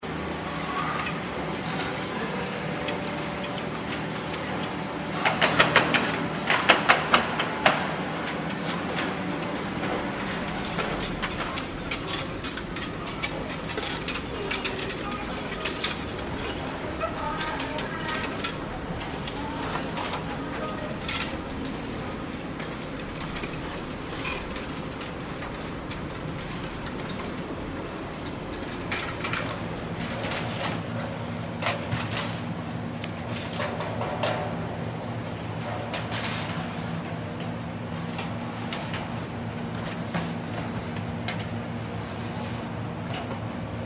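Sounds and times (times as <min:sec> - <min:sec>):
medieval bakery ambience: 0:00.0 - 0:43.8.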